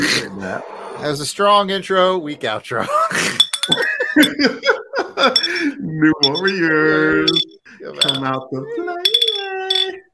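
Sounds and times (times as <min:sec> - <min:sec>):
speech: 0:00.1 - 0:09.0
laughter: 0:02.8 - 0:05.8
glasses clinking: 0:03.3 - 0:04.4, 0:05.2 - 0:08.4, 0:09.0 - 0:10.0.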